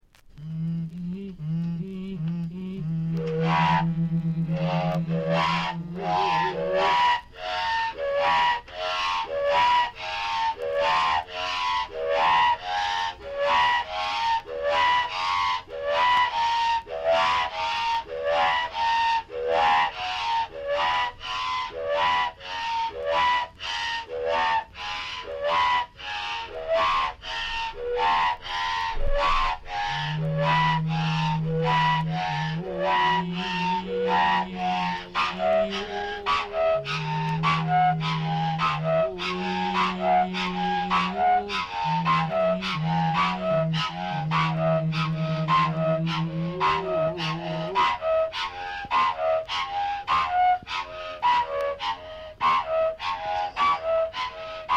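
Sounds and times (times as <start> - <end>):
Iawa flutes: 0.4 - 54.7.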